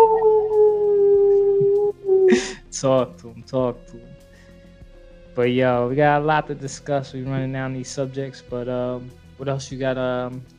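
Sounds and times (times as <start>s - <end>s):
dog howling: 0.0s - 2.4s
speech: 2.8s - 4.2s, 5.4s - 10.5s.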